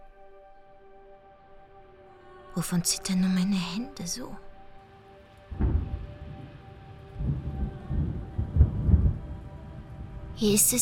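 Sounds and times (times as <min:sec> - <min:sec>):
speech: 0:02.6 - 0:04.5, 0:10.4 - 0:10.8
rainfall in a storm: 0:05.0 - 0:10.8
thunder rumbling in a storm: 0:05.5 - 0:10.8.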